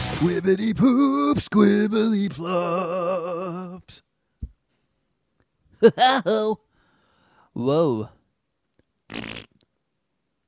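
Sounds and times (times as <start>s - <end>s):
speech: 0.2s - 4.1s, 5.8s - 6.6s, 7.6s - 8.2s, 9.1s - 9.5s
loud buzzy fart: 9.1s - 9.6s.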